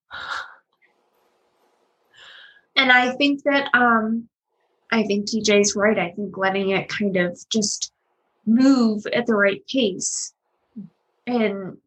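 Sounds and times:
person breathing: 2.1 - 2.7
speech: 2.8 - 4.3, 4.9 - 11.8.

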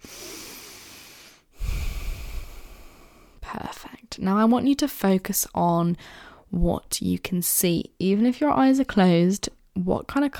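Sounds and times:
person taking a deep breath during a guided relaxation exercise: 0.0 - 3.4, 6.0 - 6.5
speech: 3.5 - 10.3.

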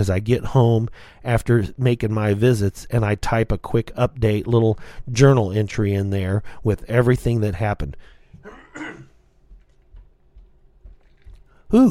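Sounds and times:
speech: 0.0 - 9.0
dry cough: 8.4 - 9.3
faint low thumps and rustles: 9.3 - 11.7.

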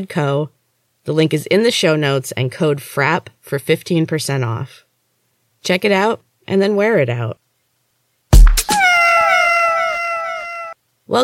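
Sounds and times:
speech: 0.0 - 4.8, 5.6 - 7.4, 11.1 - 11.2
house cat meowing: 8.6 - 10.8.

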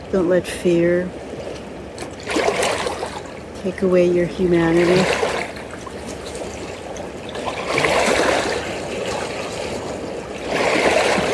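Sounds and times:
flowing stream water: 0.0 - 11.3
speech: 0.1 - 1.2, 3.6 - 5.2.

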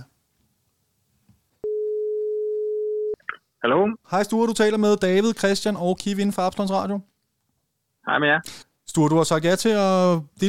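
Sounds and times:
telephone ringing tone while placing a phone call: 1.6 - 3.2
speech: 3.6 - 7.1, 8.0 - 10.4.

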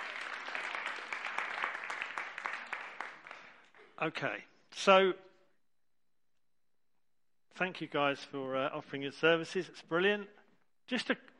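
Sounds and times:
crowd clapping: 0.0 - 4.0
speech: 4.0 - 5.3, 7.6 - 11.3.

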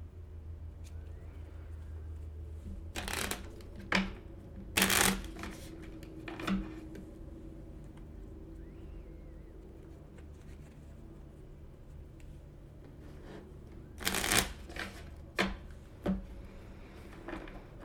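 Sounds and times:
low steady rumble: 0.0 - 17.8
deck of tarot cards being shuffled: 2.6 - 7.1, 9.7 - 15.8.

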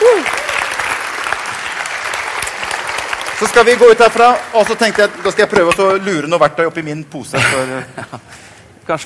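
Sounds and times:
audience applause: 0.0 - 6.1
speech: 3.4 - 9.0
laughter: 7.4 - 8.4.

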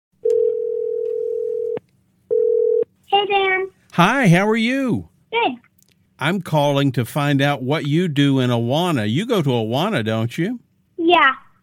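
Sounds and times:
telephone ringing tone on an outgoing call: 0.2 - 2.9
speech: 3.3 - 11.4.

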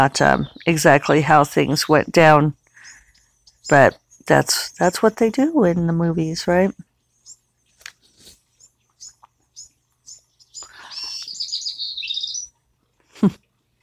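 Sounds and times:
speech: 0.0 - 2.6, 3.7 - 6.8
birds chirping outdoors in the morning: 0.0 - 13.8.

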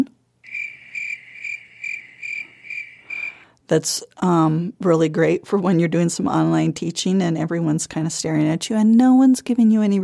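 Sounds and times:
faint hum: 0.0 - 3.7
cricket sound effect from a soundboard app: 0.4 - 3.5
speech: 3.7 - 10.0.

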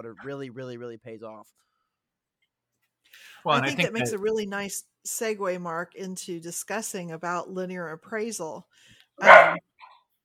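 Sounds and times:
speech: 0.0 - 1.7, 3.1 - 9.7
dog yelp or whine: 9.2 - 9.6
dog barking: 9.2 - 9.7.

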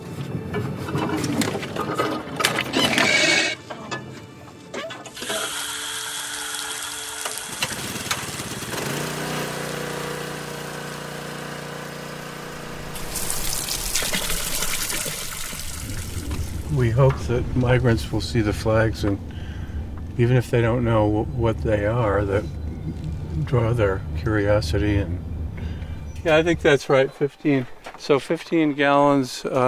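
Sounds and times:
generator droning: 0.0 - 27.9
water gushing from a hose into a container: 5.2 - 9.6, 12.9 - 16.9
speech: 17.0 - 19.3, 20.2 - 25.3, 26.2 - 29.6.

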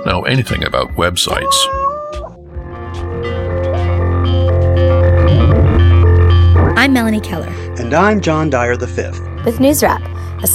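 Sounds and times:
speech: 0.0 - 1.8, 6.8 - 10.5
cat meowing: 1.3 - 2.4
throbbing low hum with layered musical tones: 2.4 - 10.5.

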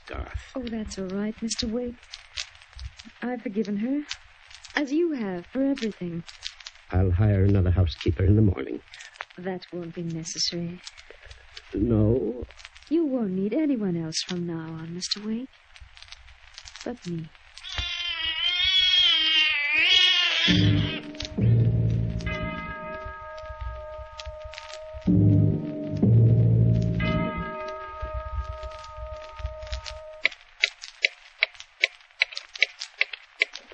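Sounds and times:
speech: 0.4 - 2.2, 3.2 - 15.6, 16.8 - 17.4, 20.5 - 20.8
cat meowing long and wavering: 17.6 - 25.1, 27.4 - 30.3
low rumble: 21.0 - 30.2
sustained ringing tone: 21.2 - 30.2.

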